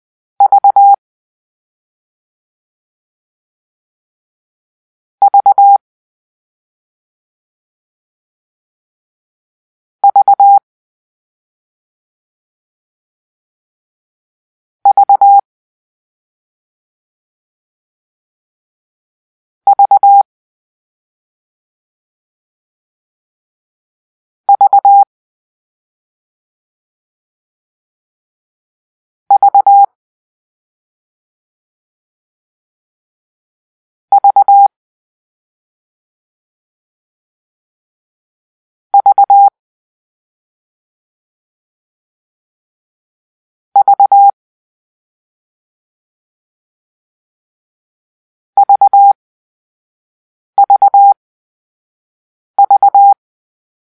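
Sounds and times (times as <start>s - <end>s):
morse code for the letter V: 0.4s - 1.0s, 5.2s - 5.8s, 10.0s - 10.6s, 14.9s - 15.4s, 19.7s - 20.2s, 24.5s - 25.1s, 29.3s - 29.9s, 34.2s - 34.7s, 39.0s - 39.5s, 43.8s - 44.3s, 48.6s - 49.2s, 50.6s - 51.2s, 52.6s - 53.2s.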